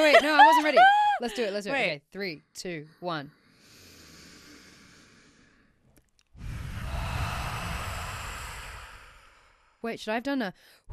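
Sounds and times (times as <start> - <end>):
speech: 0.0 - 3.4, 9.8 - 10.9
deep yoga breath exhaled through the mouth: 3.4 - 9.8.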